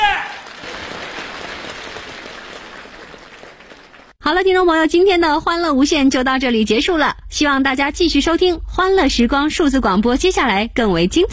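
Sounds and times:
audience applause in a radio comedy program: 0.0 - 4.2
speech: 4.3 - 11.3.

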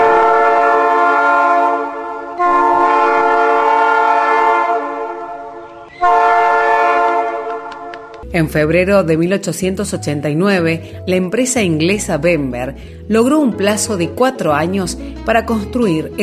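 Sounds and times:
train horn on the rail line through the Córdoba hills of Argentina: 0.0 - 8.2
speech: 8.4 - 16.2.

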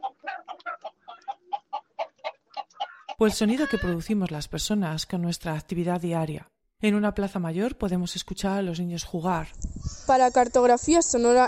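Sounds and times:
hens clucking on a farm in Castronuño, Spain: 0.0 - 4.0
speech: 3.2 - 11.4.

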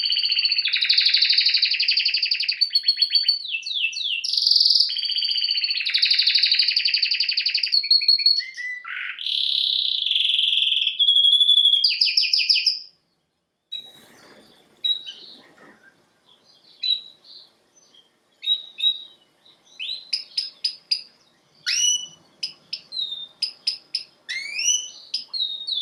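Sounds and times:
male domestic canary song: 0.0 - 13.0, 13.7 - 25.7.

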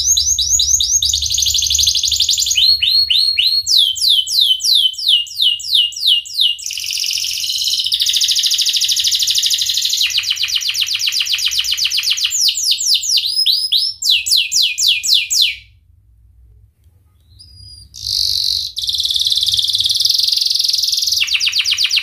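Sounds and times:
Atlantic canary singing vigorously: 0.0 - 15.7, 17.2 - 22.0.

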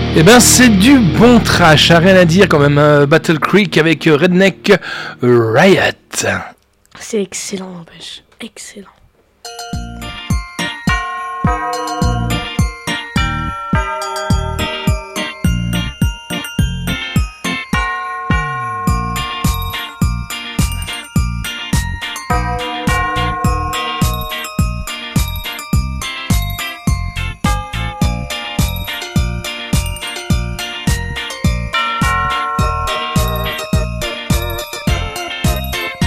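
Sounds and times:
speech: 0.2 - 9.0
sleigh bells shaken in a steady rhythmic jingle: 9.4 - 36.0.

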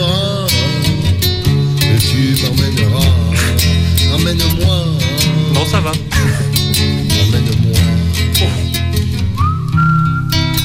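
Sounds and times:
music: 0.0 - 10.6
man whistling a tune: 9.4 - 10.6.

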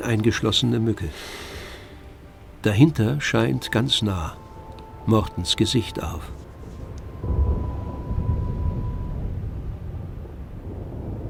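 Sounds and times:
speech: 0.0 - 1.5, 2.6 - 4.4, 5.0 - 6.4
heavy pouring rain: 0.0 - 11.2
thunder rumbling: 2.2 - 11.2.

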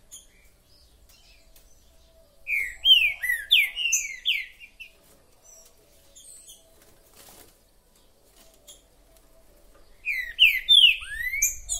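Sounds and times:
green-winged saltator whistled song: 0.0 - 6.9, 9.8 - 11.7.

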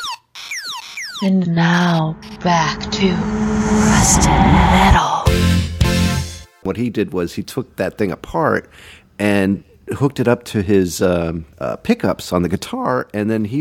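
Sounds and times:
speech: 1.2 - 5.1, 6.7 - 13.5
tinny electronic siren from a button sound-effect keychain: 1.2 - 5.3.

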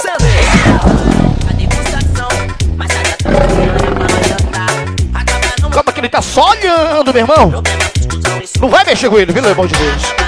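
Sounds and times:
pounding music at a live DJ show: 0.2 - 5.8
tiger roaring: 3.2 - 4.9
speech: 6.2 - 7.9, 8.6 - 10.2.

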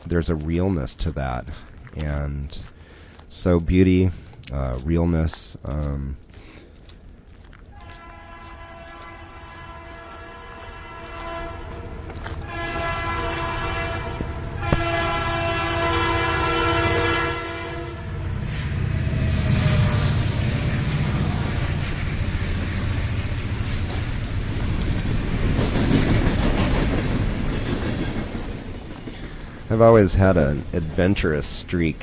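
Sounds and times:
freight train rail cars rolling with rhythmic clatter: 0.0 - 32.0
speech: 0.1 - 6.2, 29.9 - 32.0
freight train horn: 7.8 - 18.7.

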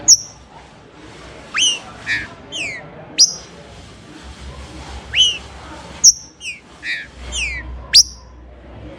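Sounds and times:
Green-winged Saltator song: 0.1 - 0.4, 1.6 - 3.5, 5.2 - 5.4, 6.0 - 8.2.

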